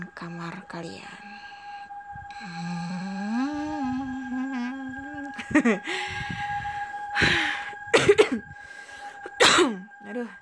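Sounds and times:
faint steady hum: 0:00.0 - 0:10.3
speech: 0:00.2 - 0:01.4, 0:02.4 - 0:03.4, 0:05.5 - 0:06.4, 0:07.2 - 0:07.5
laughter: 0:05.4 - 0:05.9
person coughing: 0:08.0 - 0:08.4, 0:09.3 - 0:09.8.

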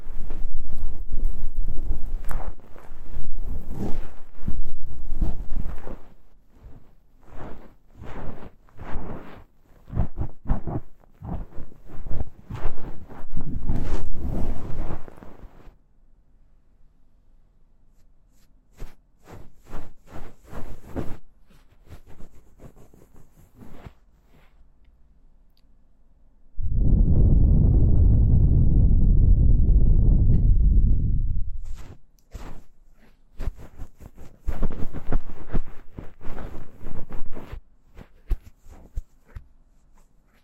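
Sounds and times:
dense crackly scraping and rustling of ear cleaning: 0:00.0 - 0:15.8, 0:18.3 - 0:24.7, 0:31.6 - 0:40.4
loud low breathy blowing rush: 0:26.6 - 0:31.7.

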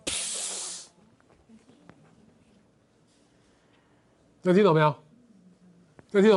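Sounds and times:
whale exhaling spray through its blowhole: 0:00.0 - 0:00.9
speech: 0:04.4 - 0:05.0, 0:06.1 - 0:06.3.

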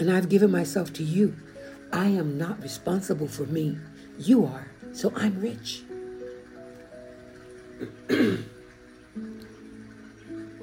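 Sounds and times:
speech: 0:00.0 - 0:05.9, 0:07.8 - 0:08.5
person clearing throat: 0:07.8 - 0:08.6.

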